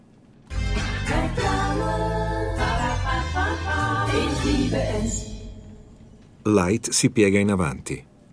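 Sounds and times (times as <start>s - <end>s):
advertising jingle played from a CD player: 0.5s - 6.5s
speech: 6.4s - 8.1s.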